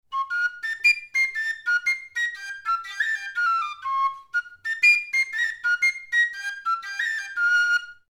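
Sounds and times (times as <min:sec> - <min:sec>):
txistu melody in F at 120 BPM: 0:00.1 - 0:08.1.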